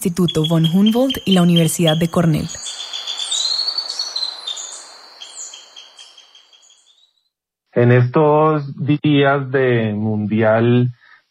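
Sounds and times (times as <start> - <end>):
speech: 0.0 - 2.7, 7.8 - 11.0
high thin trills of a tyrannulet: 0.0 - 7.2.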